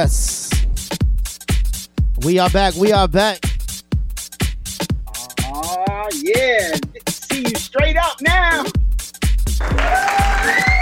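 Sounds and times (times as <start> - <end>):
speech: 0.0 - 0.4, 2.2 - 3.5, 6.2 - 8.8
heavy steady bass thumps: 0.0 - 9.7
crowd applause: 9.6 - 10.8
crowd whistling: 10.2 - 10.8.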